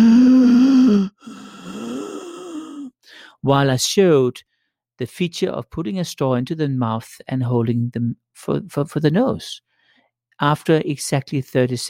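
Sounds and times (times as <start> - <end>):
person breathing heavily and laboriously to simulate asthma: 0.0 - 3.4
speech: 3.4 - 9.7, 10.4 - 11.8.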